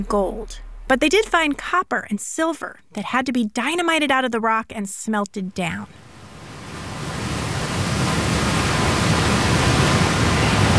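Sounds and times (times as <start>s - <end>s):
speech: 0.0s - 6.0s
waterfall rushing: 6.1s - 10.7s.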